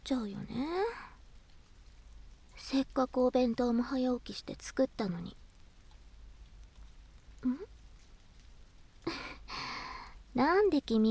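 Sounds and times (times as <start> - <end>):
steady soft rain: 0.0 - 11.1
speech: 0.1 - 0.9, 2.7 - 5.4, 10.4 - 11.1
quiet breathy sigh: 9.1 - 10.2.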